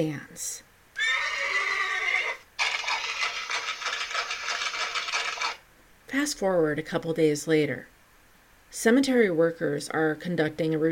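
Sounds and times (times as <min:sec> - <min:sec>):
speech: 0:00.0 - 0:00.7, 0:06.1 - 0:07.9, 0:08.7 - 0:10.9
horse pulling a carriage neighing: 0:01.0 - 0:05.6.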